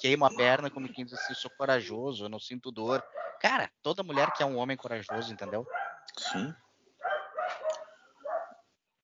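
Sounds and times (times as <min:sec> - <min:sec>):
speech: 0:00.0 - 0:06.6
dogs barking: 0:00.4 - 0:01.5, 0:02.9 - 0:03.5, 0:04.1 - 0:08.6.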